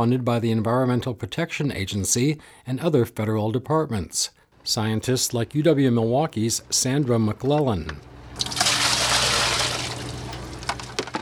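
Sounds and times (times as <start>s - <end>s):
speech: 0.0s - 8.6s
bucket of lake water being dumped out: 8.0s - 11.2s.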